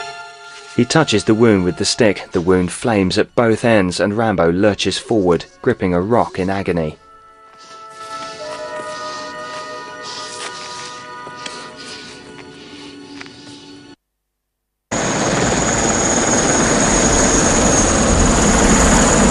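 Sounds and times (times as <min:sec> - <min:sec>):
speech: 0:00.8 - 0:07.0
helicopter gunship rotor and engine roar hovering over a fort: 0:14.9 - 0:19.2.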